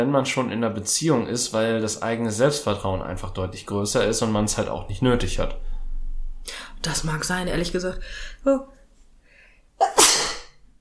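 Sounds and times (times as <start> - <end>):
speech: 0.0 - 5.7, 6.4 - 8.8
sneeze: 9.8 - 10.6.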